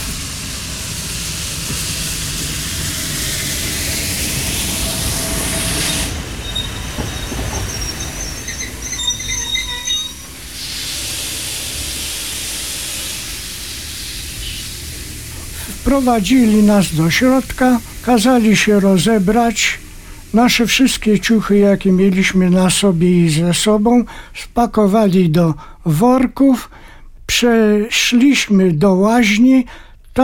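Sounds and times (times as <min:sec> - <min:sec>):
prisoner train rolling along the rails: 0:00.0 - 0:19.0
speech: 0:01.7 - 0:01.9, 0:15.9 - 0:30.2
thin metallic train wheel squeals: 0:05.4 - 0:10.7.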